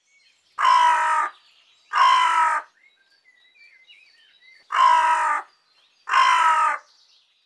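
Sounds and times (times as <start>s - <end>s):
hooded crow Corvus cornix calling: 0.6s - 2.8s, 4.7s - 5.5s, 6.1s - 6.9s.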